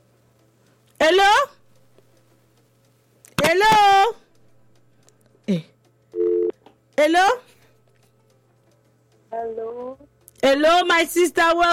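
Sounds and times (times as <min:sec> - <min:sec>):
speech: 0:01.1 - 0:01.6, 0:05.5 - 0:05.7, 0:07.0 - 0:07.5, 0:09.4 - 0:11.7
electronic phone tone: 0:06.2 - 0:06.5.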